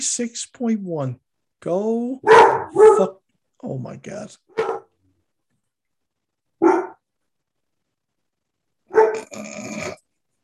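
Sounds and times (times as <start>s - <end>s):
speech: 0.0s - 4.5s
dog barking: 2.2s - 3.2s, 4.5s - 4.9s, 6.6s - 7.0s, 8.9s - 9.3s.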